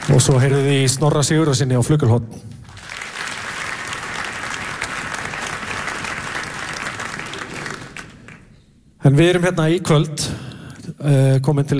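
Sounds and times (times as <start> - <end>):
concert audience applauding a pianist: 0.0 - 1.1, 2.7 - 8.6
speech: 0.1 - 2.5, 9.0 - 11.7.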